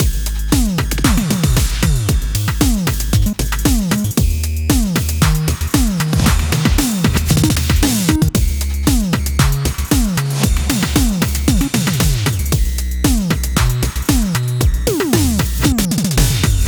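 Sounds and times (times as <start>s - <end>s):
drum fills: 0.0s - 16.6s.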